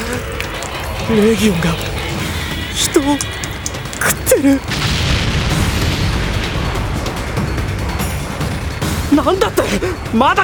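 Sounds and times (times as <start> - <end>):
air strike explosion rumbling: 0.8 - 9.1
speech: 1.1 - 1.9, 2.8 - 3.4, 4.0 - 4.9, 9.1 - 10.4.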